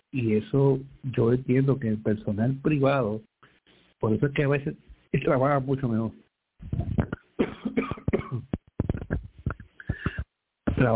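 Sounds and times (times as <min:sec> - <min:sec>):
speech: 0:00.1 - 0:03.3, 0:04.0 - 0:07.2
person coughing: 0:07.0 - 0:09.2.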